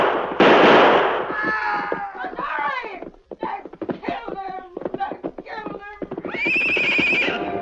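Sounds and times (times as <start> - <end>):
gunfire in a shootout: 0.0 - 1.7
people shouting: 1.3 - 3.6
horse whinnying: 5.5 - 7.5.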